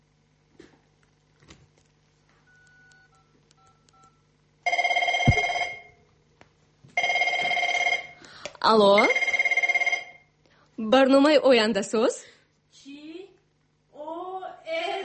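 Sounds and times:
faint quick telephone keypad tones: 0:02.5 - 0:05.9, 0:07.0 - 0:08.2
loud buzzy telephone ring: 0:02.5 - 0:06.0, 0:07.0 - 0:08.2, 0:09.0 - 0:10.3
speech: 0:08.7 - 0:09.2, 0:10.9 - 0:12.3.

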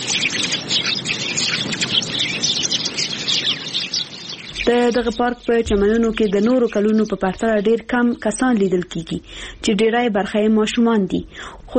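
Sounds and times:
many birds chirping in a park: 0:00.0 - 0:11.7
speech: 0:04.7 - 0:11.7.

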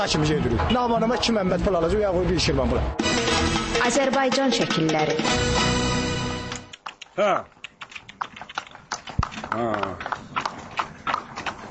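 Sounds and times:
speech: 0:00.0 - 0:05.9, 0:07.2 - 0:07.5, 0:09.5 - 0:10.1
timber-hauling horse hooves clip-clopping along a village road in Masallı, Azerbaijan: 0:06.5 - 0:11.6.

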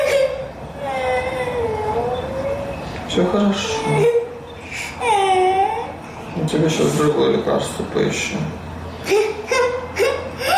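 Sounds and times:
young child whimpering and crying: 0:00.0 - 0:06.2, 0:09.0 - 0:10.5
speech: 0:03.2 - 0:04.2, 0:06.5 - 0:09.3.

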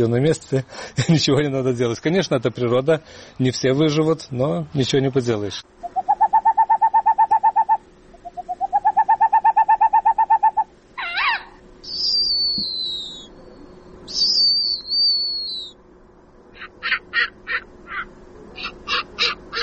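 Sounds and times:
speech: 0:00.0 - 0:05.8
clipped bursts of calls: 0:05.8 - 0:15.8, 0:16.6 - 0:19.6
high thin squealing whistles: 0:05.8 - 0:15.8
owl hooting in rapid trilling runs of short notes: 0:05.8 - 0:15.8, 0:16.5 - 0:19.6.

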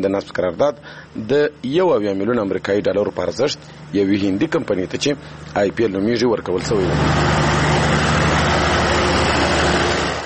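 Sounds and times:
speech: 0:00.0 - 0:07.4
diesel engines running to power a small ice factory near a power plant: 0:03.5 - 0:10.2.

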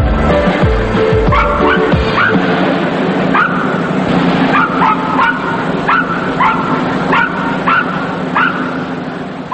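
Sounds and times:
noisy like a busy indoor arena: 0:00.0 - 0:09.5
several small circus dogs barking and yapping: 0:01.3 - 0:02.5, 0:03.3 - 0:09.5.

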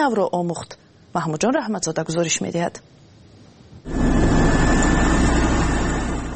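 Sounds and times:
speech: 0:00.0 - 0:03.1
tractor engine running: 0:03.9 - 0:06.3.

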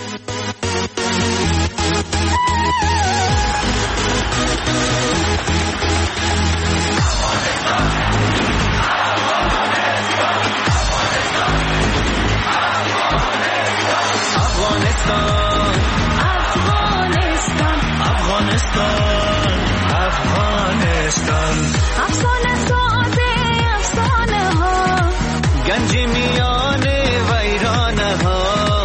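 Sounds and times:
upbeat celebratory song played for sports victory: 0:00.0 - 0:28.8
shouted chant-like group vocals: 0:07.0 - 0:22.2.

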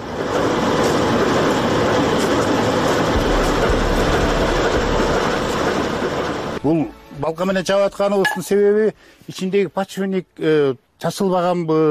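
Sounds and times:
freight train wagons rolling into a railway station: 0:00.0 - 0:06.6
train wheels clicking on rail joints: 0:00.0 - 0:06.6
low droning hum: 0:02.5 - 0:07.2
speech: 0:06.6 - 0:11.8.

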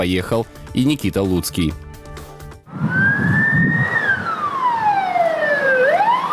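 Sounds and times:
speech: 0:00.0 - 0:01.8
police car siren wailing: 0:02.7 - 0:06.3.

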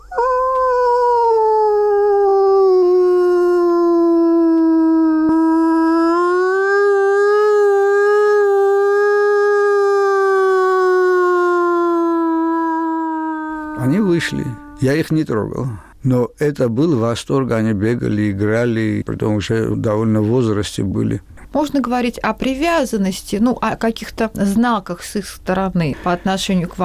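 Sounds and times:
person imitating a wolf howl as a howl call: 0:00.0 - 0:15.0
speech: 0:14.8 - 0:26.8.

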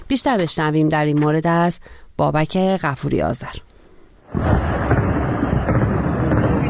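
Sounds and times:
speech: 0:00.1 - 0:03.7, 0:04.3 - 0:04.7
anti-aircraft gunfire: 0:04.3 - 0:06.6
explosions: 0:04.3 - 0:06.6
loud boom: 0:04.3 - 0:06.6.

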